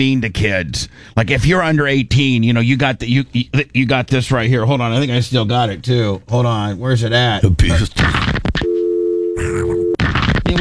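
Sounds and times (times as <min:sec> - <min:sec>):
speech: 0:00.0 - 0:08.3
telephone busy signal sound effect: 0:08.6 - 0:10.0.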